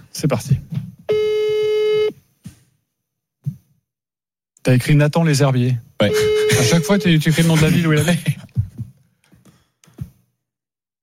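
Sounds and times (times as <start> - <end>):
speech: 0.2 - 0.8, 4.7 - 8.4
phone call ringing tone: 1.1 - 2.1, 6.0 - 7.2.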